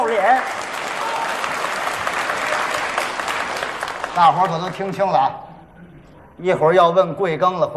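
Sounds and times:
large audience applauding at a stage performance: 0:00.0 - 0:05.2
speech: 0:00.2 - 0:00.7, 0:04.2 - 0:05.4, 0:06.4 - 0:07.7.

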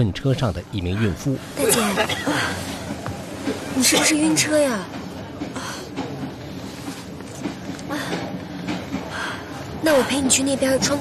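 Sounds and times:
speech: 0:00.0 - 0:05.7, 0:09.8 - 0:10.9
faint murmur: 0:00.0 - 0:10.9
moving train rumbling heard from inside the carriage: 0:00.0 - 0:10.9
train wheels clacking over the rails: 0:02.6 - 0:10.9.

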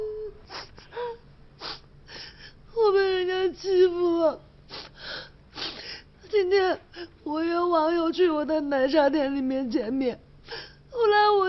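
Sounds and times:
girl crying and whimpering: 0:00.0 - 0:07.6
speech: 0:08.4 - 0:10.3.

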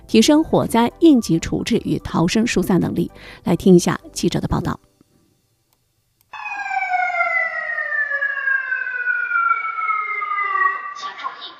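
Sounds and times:
speech: 0:00.1 - 0:04.9
fire alarm siren inside a multi-storey service building during a fire drill: 0:06.3 - 0:11.5.

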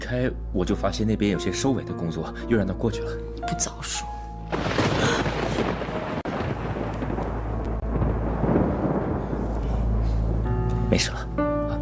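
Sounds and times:
speech: 0:00.1 - 0:04.8, 0:10.9 - 0:11.2
thunder rumbling: 0:04.5 - 0:11.4.

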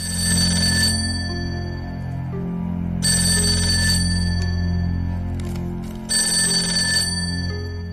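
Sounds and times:
old-style telephone bell ringing: 0:00.0 - 0:02.0, 0:03.0 - 0:05.1, 0:06.1 - 0:07.9
steady low drone: 0:00.0 - 0:07.9.

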